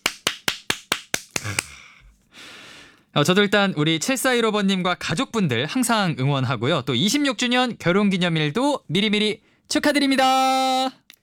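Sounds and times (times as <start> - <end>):
crisp hand claps: 0.0 - 1.8
speech: 1.4 - 1.8, 3.2 - 11.0.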